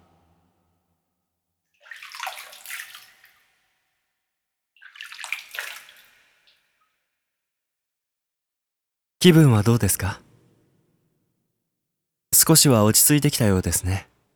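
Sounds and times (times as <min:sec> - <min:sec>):
holy water poured to wash an object during a blessing rite: 0:01.8 - 0:03.6, 0:04.8 - 0:06.6
speech: 0:09.2 - 0:10.2, 0:12.5 - 0:14.1.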